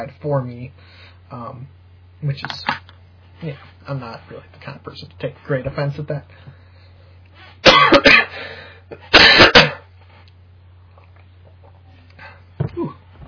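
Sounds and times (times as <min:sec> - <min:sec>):
speech: 0:00.0 - 0:02.8, 0:03.4 - 0:06.6, 0:07.6 - 0:09.8
low steady hum: 0:00.0 - 0:13.2
harsh coughing: 0:07.6 - 0:09.9.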